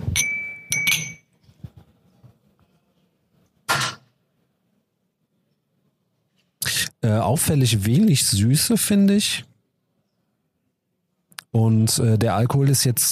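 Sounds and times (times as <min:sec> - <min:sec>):
whisky glasses clinking in a toast: 0:00.1 - 0:01.4
speech: 0:07.0 - 0:09.5, 0:11.6 - 0:13.0.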